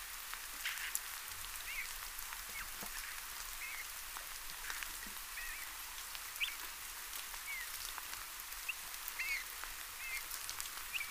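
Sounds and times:
steady hiss: 0.0s - 11.0s
Eurasian bullfinch Pyrrhula pyrrhula piping calls: 1.6s - 1.9s, 3.6s - 3.9s, 6.4s - 6.6s, 8.7s - 10.3s.

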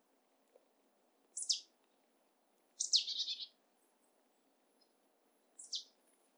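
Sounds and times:
marsh tit Poecile palustris high downslurred calls: 1.4s - 1.7s, 2.8s - 3.5s, 5.6s - 5.9s.

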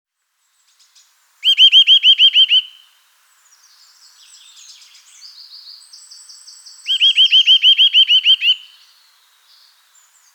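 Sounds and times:
Eurasian nuthatch ringing whistled calls: 1.4s - 2.8s, 6.8s - 8.8s.

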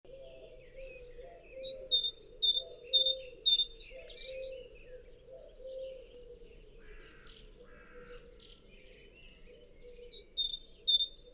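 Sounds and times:
Great tit singing two-note phrases: 1.6s - 4.6s, 10.1s - 11.3s.

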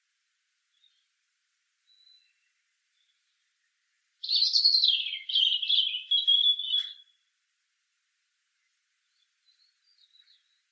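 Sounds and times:
European robin singing: 1.8s - 7.3s, 8.6s - 10.7s.

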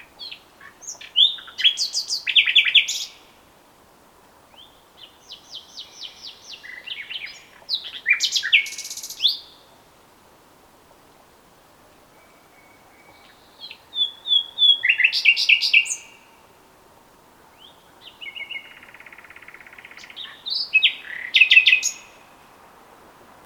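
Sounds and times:
Common nightingale song: 0.0s - 3.4s, 4.4s - 9.9s, 11.9s - 16.6s, 17.4s - 22.6s.

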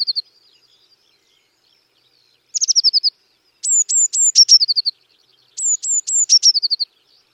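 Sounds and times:
Eurasian blue tit Cyanistes caeruleus calling: 2.6s - 5.0s, 5.6s - 6.9s.

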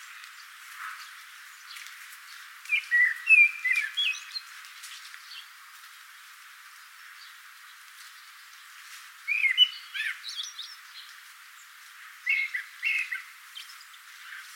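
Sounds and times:
common blackbird Turdus merula singing whistled warbling phrases: 2.7s - 4.5s, 9.3s - 11.1s, 12.2s - 14.4s.

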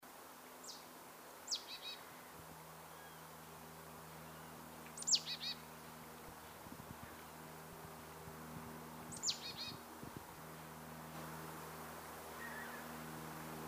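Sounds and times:
low steady hum: 0.0s - 13.6s
marsh tit Poecile palustris calls: 5.0s - 5.6s, 9.1s - 9.8s.

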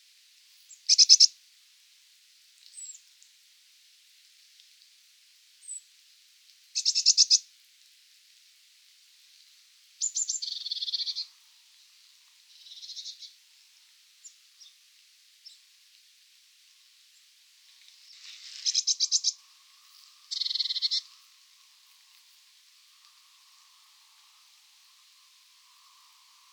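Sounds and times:
Eurasian blue tit Cyanistes caeruleus scolding calls: 0.9s - 1.3s, 6.8s - 7.4s, 10.0s - 11.2s, 18.6s - 19.4s, 20.3s - 21.1s.

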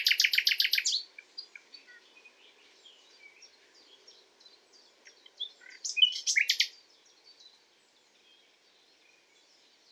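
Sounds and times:
common nightingale Luscinia megarhynchos singing: 0.0s - 3.6s, 4.5s - 6.8s.

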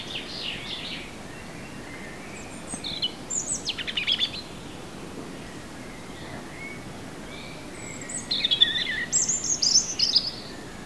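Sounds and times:
European robin Erithacus rubecula singing: 0.0s - 10.8s
faint steady hiss: 0.0s - 10.8s.

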